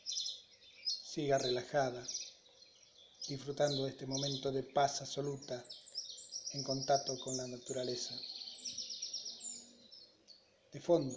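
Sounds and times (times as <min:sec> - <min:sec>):
birds chirping and trilling in the background: 0:00.0 - 0:11.1
speech: 0:01.2 - 0:02.2, 0:03.3 - 0:05.8, 0:06.5 - 0:08.3, 0:10.7 - 0:11.1.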